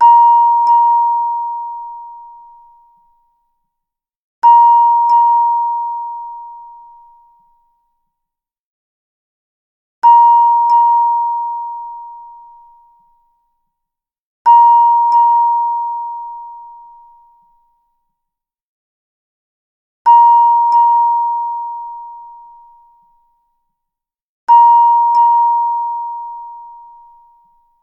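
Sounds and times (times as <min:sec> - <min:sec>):
tuning fork ringtone: 0:00.0 - 0:03.0, 0:04.4 - 0:07.4, 0:10.0 - 0:13.1, 0:14.5 - 0:17.4, 0:20.1 - 0:23.2, 0:24.5 - 0:27.5.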